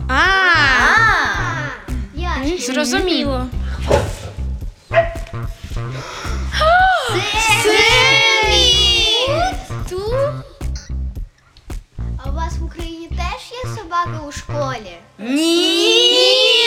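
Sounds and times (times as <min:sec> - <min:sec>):
people's voices: 0:00.1 - 0:04.5, 0:06.0 - 0:10.9, 0:15.2 - 0:16.6
speech: 0:02.5 - 0:04.1, 0:12.7 - 0:16.6
dog barking: 0:04.9 - 0:05.3.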